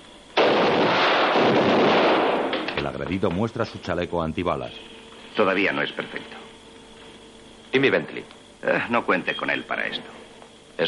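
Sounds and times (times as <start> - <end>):
gunshot as one man fires at another: 0.4 - 2.7
speech: 3.0 - 6.4, 7.7 - 10.2.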